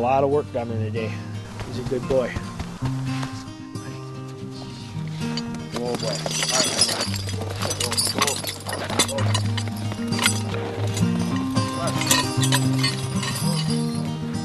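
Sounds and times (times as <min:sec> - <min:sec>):
speech: 0:00.0 - 0:03.0, 0:05.8 - 0:10.8
hooves of a horse about nine years old clip-clopping: 0:01.3 - 0:14.4
clinks and knocks: 0:05.2 - 0:14.4.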